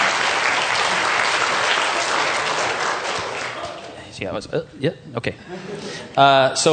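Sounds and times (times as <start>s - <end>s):
crowd clapping: 0.0s - 4.0s
speech: 4.2s - 6.7s.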